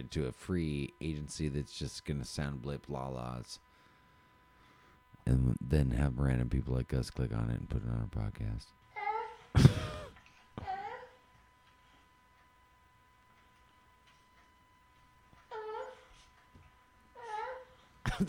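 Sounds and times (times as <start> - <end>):
speech: 0.0 - 3.7, 5.3 - 8.8, 9.5 - 10.0
faint steady tone: 0.0 - 18.2
baby babbling in a crib: 9.0 - 9.4, 10.6 - 11.2, 17.2 - 17.8.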